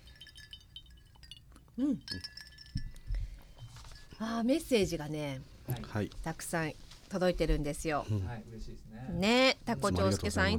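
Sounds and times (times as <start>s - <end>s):
cups clinking together in a toast: 0.0s - 4.3s
speech: 1.8s - 2.4s, 4.2s - 10.5s.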